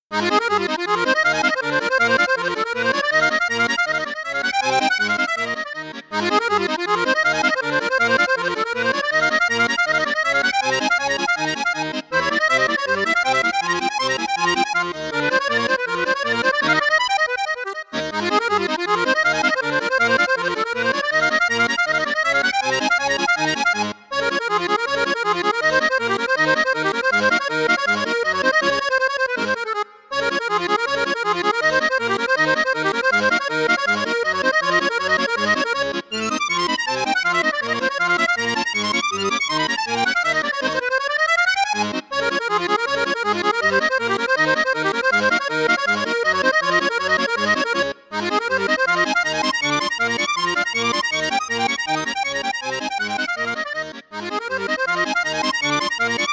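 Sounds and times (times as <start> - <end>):
Paolo Soprani accordion playing with high flute register: 0.0 - 56.3.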